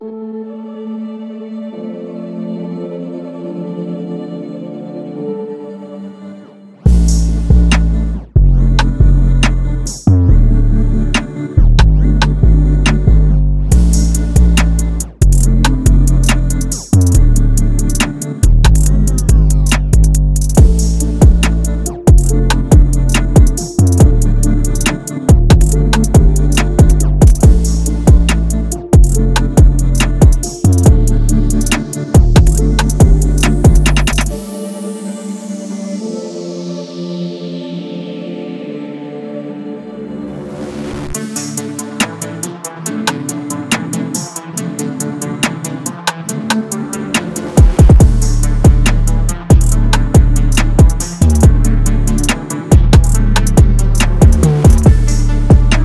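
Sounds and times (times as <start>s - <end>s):
trap beat: 6.9s - 10.5s, 11.1s - 34.4s, 41.1s - 55.8s.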